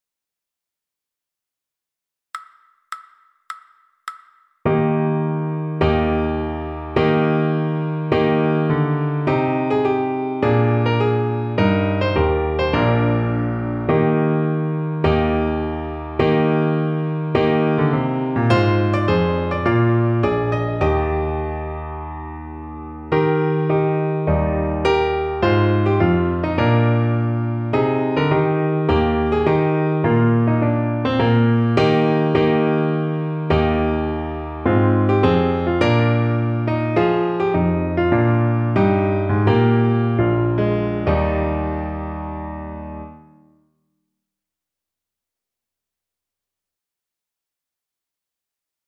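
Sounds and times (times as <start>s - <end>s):
fast piano piece: 4.7s - 43.2s.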